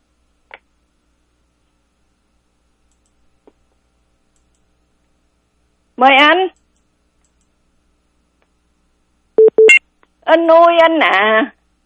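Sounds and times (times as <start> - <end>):
speech: 6.0 - 6.5, 10.3 - 11.6
telephone busy signal electronic beeps: 9.4 - 9.8.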